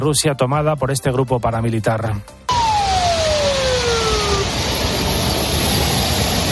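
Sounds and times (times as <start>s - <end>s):
speech: 0.0s - 2.4s
armored vehicles and military trucks leaving the city of Rostov: 2.5s - 6.5s
falling whine: 2.5s - 6.5s.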